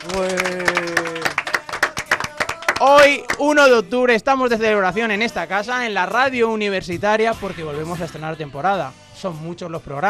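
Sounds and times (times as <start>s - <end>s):
speech: 0.0s - 0.6s, 2.8s - 10.0s
studio audience applause: 0.0s - 3.7s.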